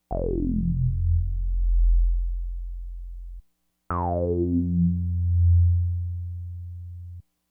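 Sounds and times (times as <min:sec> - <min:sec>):
CEM LP filter sweep: 0:00.1 - 0:07.2.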